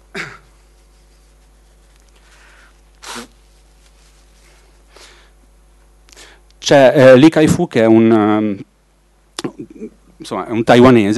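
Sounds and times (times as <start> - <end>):
person blowing nose: 2.3 - 3.6
speech: 6.7 - 8.7, 9.6 - 11.1.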